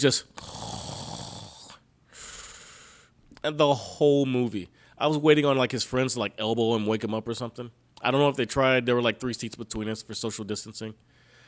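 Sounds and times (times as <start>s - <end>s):
speech: 0.0s - 0.9s, 3.4s - 11.2s
voice imitating a heavy man snoring in a cinema: 0.3s - 2.7s.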